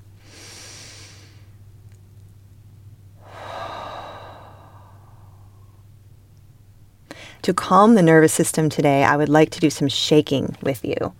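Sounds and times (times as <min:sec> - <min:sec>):
faint steady low hum: 0:00.0 - 0:11.1
slow deep breath: 0:00.2 - 0:01.5, 0:03.2 - 0:05.9, 0:07.1 - 0:07.4
speech: 0:07.4 - 0:11.1.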